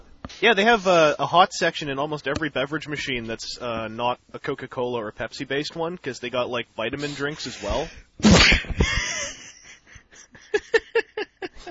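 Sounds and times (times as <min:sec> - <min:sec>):
speech: 0:00.4 - 0:09.0
loud sneeze: 0:07.0 - 0:08.6.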